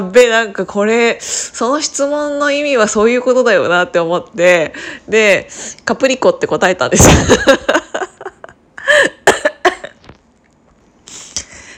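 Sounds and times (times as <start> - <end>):
speech: 0.0 - 8.0
person coughing from laughing too much: 8.8 - 10.0.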